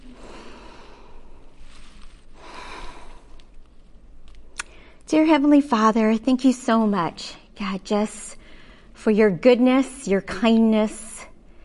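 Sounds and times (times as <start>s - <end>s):
deep breath before prayer at a church gathering: 0.0s - 3.4s, 8.4s - 9.0s
steady low hiss: 0.0s - 11.6s
speech: 5.1s - 8.3s, 9.0s - 11.0s.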